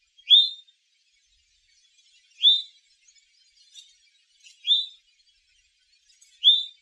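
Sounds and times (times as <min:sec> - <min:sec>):
eastern towhee calling: 0:00.2 - 0:00.6, 0:02.4 - 0:02.8, 0:04.6 - 0:05.0, 0:06.4 - 0:06.8.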